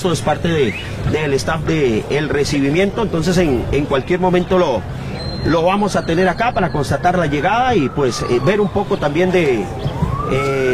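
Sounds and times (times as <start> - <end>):
sirens wailing: 0.0 - 10.7
speech: 0.0 - 10.7.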